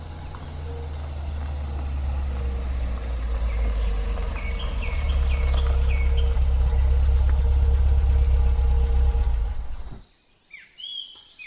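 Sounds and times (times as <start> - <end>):
car engine idling with a low rumble: 0.0 - 10.0
birds chirping: 0.0 - 11.4.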